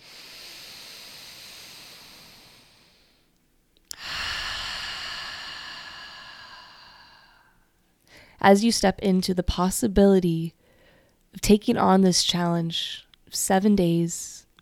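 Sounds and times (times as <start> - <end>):
slow deep breathing in a guided meditation: 0.0 - 3.3, 3.9 - 8.4
speech: 8.4 - 10.6, 11.3 - 14.6.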